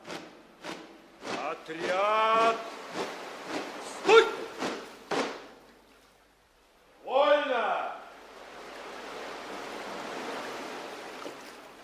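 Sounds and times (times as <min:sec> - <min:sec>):
sea surf washing against rocks: 0:00.0 - 0:05.6, 0:08.1 - 0:11.8
speech: 0:01.7 - 0:02.7.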